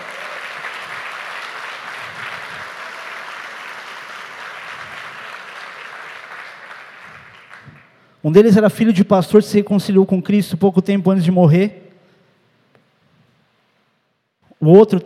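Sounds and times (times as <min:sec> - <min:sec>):
audience applause: 0:00.0 - 0:08.0
speech: 0:08.2 - 0:11.8, 0:14.6 - 0:15.0.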